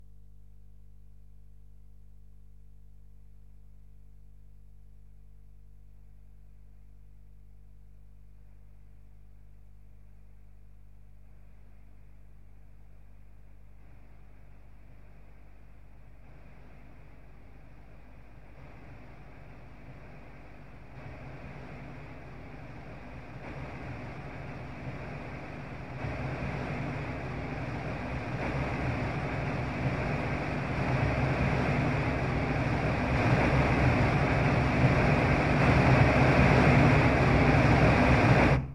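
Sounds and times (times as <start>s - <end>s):
brown noise: 16.2s - 38.7s.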